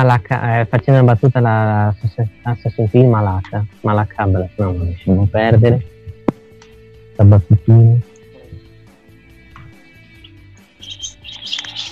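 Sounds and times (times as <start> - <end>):
speech: 0.0 - 6.0, 7.2 - 8.1
small birds chirping: 0.2 - 11.9
low hum: 3.4 - 9.8.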